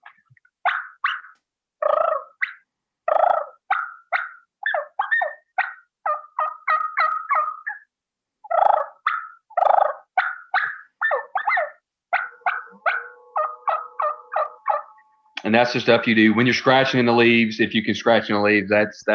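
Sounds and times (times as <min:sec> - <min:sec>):
soft turkey clucks and yelps on a mouth call: 0:00.0 - 0:15.2
speech: 0:15.5 - 0:19.1.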